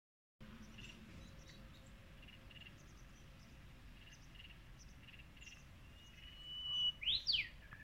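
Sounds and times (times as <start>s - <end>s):
low background noise: 0.4s - 7.8s
Brownish-flanked bush warbler song: 6.1s - 7.5s.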